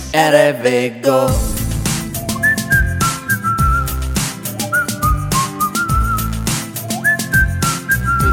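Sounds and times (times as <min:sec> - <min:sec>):
speech: 0:00.1 - 0:01.6
busy rhythmic musical backing with percussive hits: 0:01.3 - 0:08.3
person whistling a simple wavering melody: 0:02.0 - 0:08.3.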